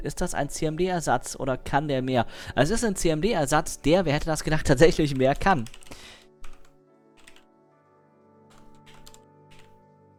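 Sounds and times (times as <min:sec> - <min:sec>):
speech: 0:00.0 - 0:06.2
typing on a computer keyboard: 0:05.0 - 0:07.4, 0:08.5 - 0:09.8.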